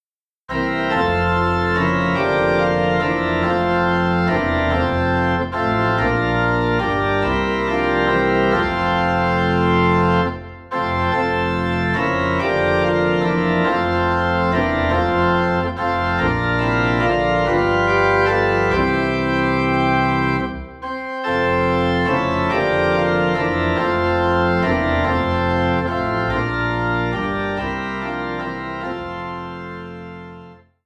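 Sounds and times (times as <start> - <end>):
organ playing a Christmas carol low in F: 0.5 - 30.8.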